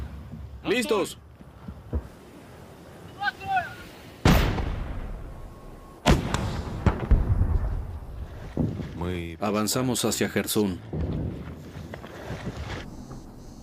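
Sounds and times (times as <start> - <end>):
speech: 0.6 - 1.2, 9.1 - 11.1
sharp gunshots during a military advance: 4.2 - 5.4, 6.0 - 7.9
heavy booming artillery blasts during a military advance: 4.2 - 8.8.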